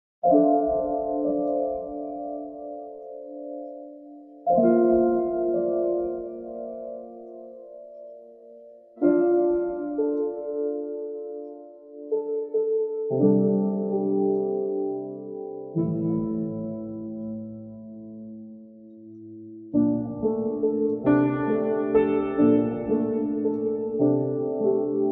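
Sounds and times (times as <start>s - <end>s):
Braunschweig upright piano: 0.2s - 25.1s.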